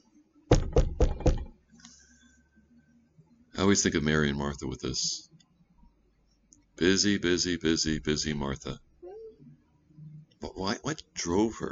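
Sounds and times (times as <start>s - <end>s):
firm knocking on a door: 0.5s - 1.6s
speech: 3.6s - 5.3s, 6.8s - 8.8s, 10.4s - 11.7s.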